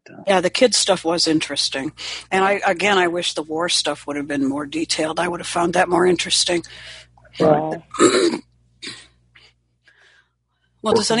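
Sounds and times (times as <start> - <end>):
speech: 0.1 - 9.0, 10.8 - 11.1
harsh hacking coughing: 7.9 - 9.2.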